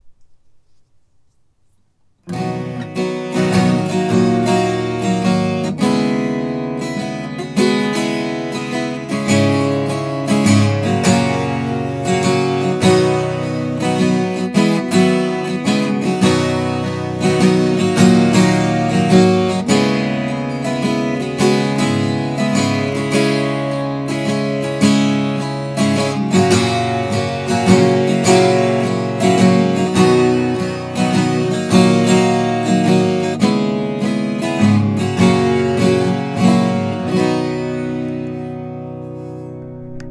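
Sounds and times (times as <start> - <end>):
guitar strum: 2.2 - 40.1.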